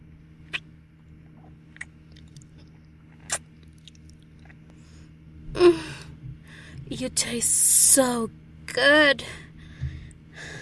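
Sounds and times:
low steady hum: 0.0s - 10.6s
wet sucking and slurping mouth sounds: 1.4s - 4.6s
speech: 7.0s - 9.4s.

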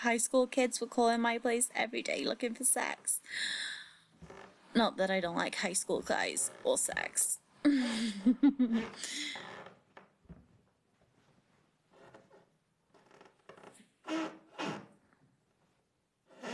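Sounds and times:
speech: 0.0s - 9.5s
wooden bench creaking: 4.1s - 4.8s, 6.0s - 7.1s, 8.7s - 10.6s, 11.9s - 15.0s
person groaning: 7.7s - 8.3s
laughter: 7.7s - 9.3s.

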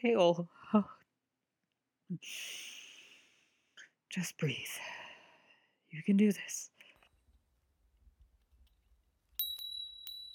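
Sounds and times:
speech: 0.0s - 1.0s, 2.1s - 2.7s, 4.1s - 5.0s, 5.9s - 6.7s
small hand bell ringing: 9.4s - 10.3s.

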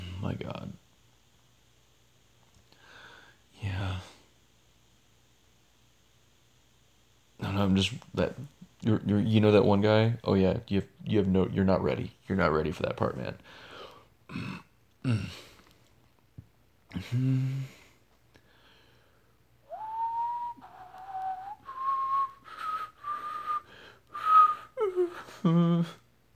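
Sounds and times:
speech: 0.3s - 0.8s, 7.7s - 13.7s, 14.3s - 15.5s, 16.9s - 17.7s, 25.4s - 26.0s
person whistling a short loud tune: 19.7s - 25.7s.

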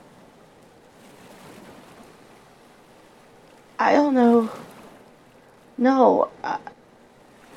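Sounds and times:
ocean waves breaking on a beach: 0.0s - 7.5s
speech: 3.8s - 4.6s, 5.8s - 6.8s.

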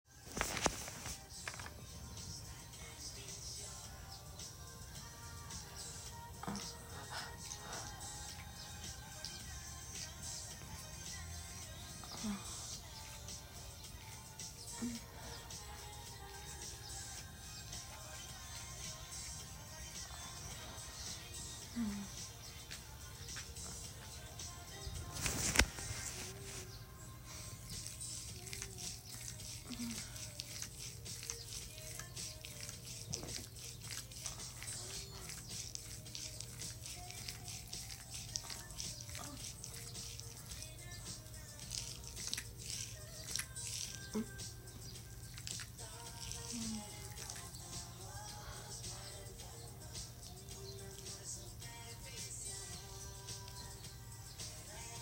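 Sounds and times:
wet noises: 0.1s - 55.0s
sleepy woman whimpering: 21.7s - 22.2s.

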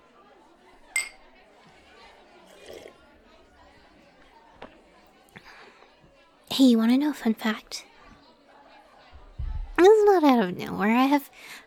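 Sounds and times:
murmuring chatter: 0.0s - 11.6s
drinking glasses clinking in a toast: 0.9s - 1.3s
speech: 6.6s - 7.9s, 10.4s - 11.6s.

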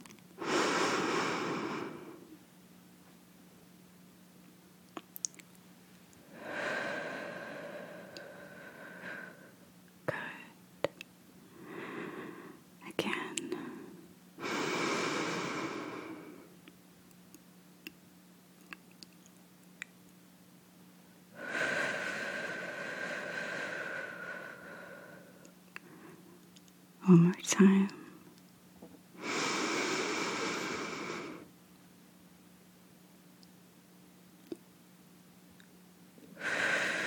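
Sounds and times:
low steady hum: 0.0s - 37.0s
deep breaths during a guided breathing exercise: 0.4s - 2.4s, 6.2s - 9.6s, 11.5s - 12.6s, 13.6s - 16.5s, 21.4s - 26.4s, 29.2s - 31.5s, 36.4s - 37.0s
speech: 27.1s - 28.0s.

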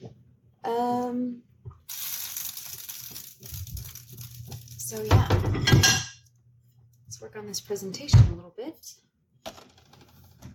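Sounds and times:
speech: 0.7s - 2.2s, 4.9s - 6.0s, 7.2s - 9.1s
water spitting and splashing over container edge: 1.9s - 5.1s.

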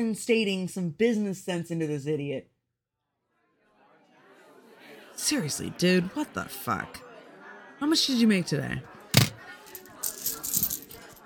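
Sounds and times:
speech: 0.0s - 2.5s, 5.2s - 7.0s, 7.8s - 8.9s
pile of coins jingling: 9.2s - 11.2s.

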